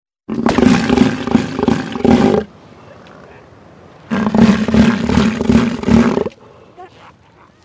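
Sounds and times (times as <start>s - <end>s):
southern elephant seal roaring with deep throbbing pulsed bellows: 0.3s - 2.5s, 4.1s - 6.4s.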